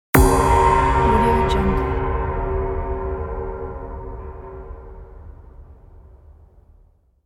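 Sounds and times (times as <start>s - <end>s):
cinematic gong impact: 0.2s - 6.7s.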